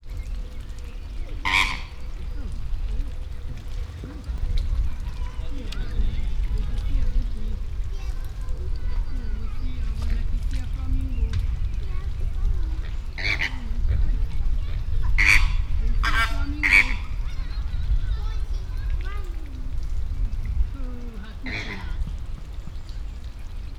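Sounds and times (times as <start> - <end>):
wind: 0.0 - 23.7
American flamingo and Chilean flamingo calling in a zoo: 0.2 - 7.8, 12.7 - 17.8, 21.0 - 23.7.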